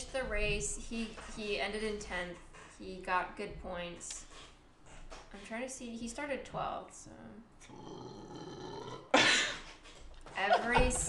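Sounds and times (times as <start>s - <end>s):
speech: 0.2s - 4.5s, 5.3s - 8.5s, 10.4s - 11.0s
burp into a microphone: 7.6s - 9.2s.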